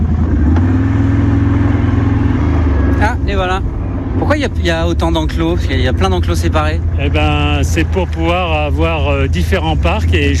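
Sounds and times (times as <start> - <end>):
quad bike engine running on a bison farm: 0.0 - 10.3
speech: 4.3 - 10.3.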